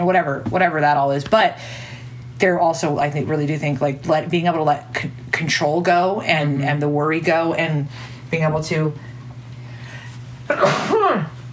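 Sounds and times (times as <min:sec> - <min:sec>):
speech: 0:00.0 - 0:09.1, 0:10.5 - 0:11.3
faint steady hum: 0:00.0 - 0:11.5
person sneezing: 0:10.5 - 0:11.4.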